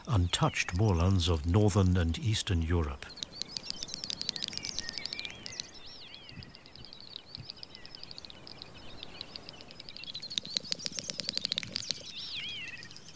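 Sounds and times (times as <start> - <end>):
faint outdoor background: 0.0 - 13.1
great snipe courtship song at dusk: 0.0 - 13.1
speech: 0.2 - 3.2.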